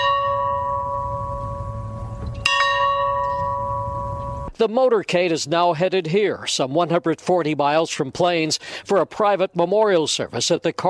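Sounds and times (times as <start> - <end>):
farm bell ringing: 0.0 - 4.5
low outdoor rumble: 0.1 - 4.5
speech: 4.6 - 10.8.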